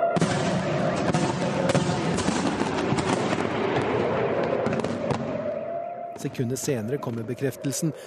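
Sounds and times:
interceptor missile warheads detonating in the sky: 0:00.2 - 0:05.6
speech: 0:06.2 - 0:08.0.

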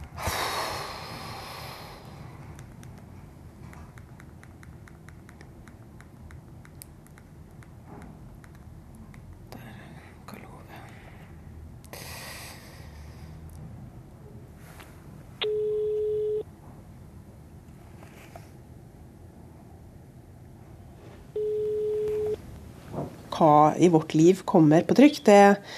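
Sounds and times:
low rustling noise: 0:00.8 - 0:11.9, 0:12.6 - 0:25.7
telephone ringing tone: 0:15.4 - 0:16.4, 0:21.4 - 0:22.4
speech: 0:23.4 - 0:25.7.

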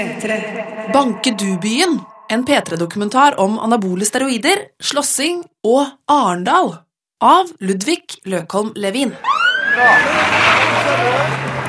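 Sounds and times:
speech: 0:00.0 - 0:11.5
police car siren rising whoop: 0:09.2 - 0:11.6
police car speeding off in Arendal: 0:09.3 - 0:11.6.

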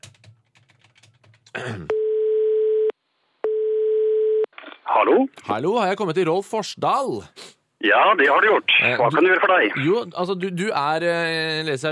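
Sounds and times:
speech: 0:01.6 - 0:02.0, 0:05.0 - 0:11.8
phone ringback tone while placing a call: 0:01.9 - 0:02.9, 0:03.5 - 0:04.5.

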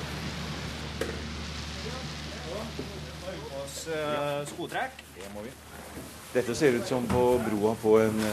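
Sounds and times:
fish feed pellets blown by compressed air through hoses at a fish farm: 0:00.0 - 0:08.3
low mechanical hum: 0:00.0 - 0:08.3
speech: 0:03.6 - 0:08.3.

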